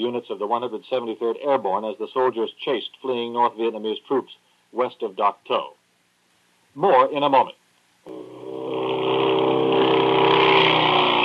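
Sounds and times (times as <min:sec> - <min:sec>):
speech: 0:00.0 - 0:05.8, 0:06.8 - 0:08.2
motorcycle engine roaring: 0:08.1 - 0:11.2.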